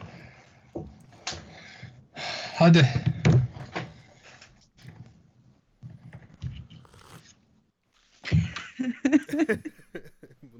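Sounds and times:
speech: 0:02.6 - 0:03.1
person lip smacking and chewing food: 0:06.4 - 0:07.3
laughter: 0:08.5 - 0:10.5.

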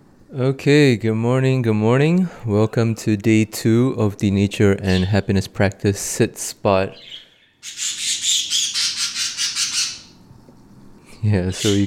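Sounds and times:
speech: 0:00.3 - 0:08.1, 0:11.2 - 0:11.8
parakeets squawking and chirping: 0:07.0 - 0:10.2, 0:11.5 - 0:11.8.

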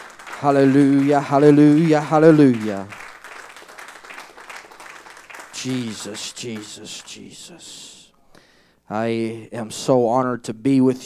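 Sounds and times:
crowd clapping: 0:00.0 - 0:07.6
speech: 0:00.4 - 0:03.0, 0:05.6 - 0:08.0, 0:08.9 - 0:11.0.

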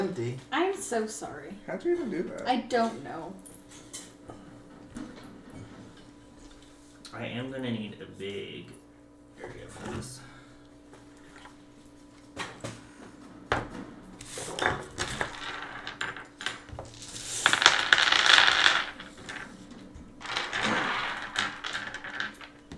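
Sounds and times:
speech: 0:00.3 - 0:04.1, 0:07.1 - 0:08.8, 0:09.4 - 0:10.3
dice clattering and rattling poured out of a container: 0:14.6 - 0:19.6, 0:20.2 - 0:22.6.

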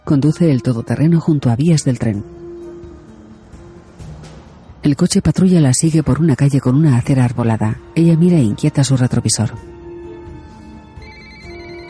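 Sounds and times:
speech: 0:00.1 - 0:02.4, 0:04.8 - 0:09.8
mobile phone ringtone playing in an SUV: 0:10.7 - 0:11.8.

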